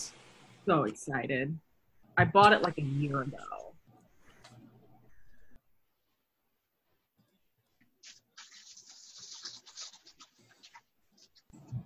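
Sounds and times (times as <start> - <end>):
speech: 0.7 - 3.6
extra fine fountain pen nib scratching across paper: 8.0 - 11.5.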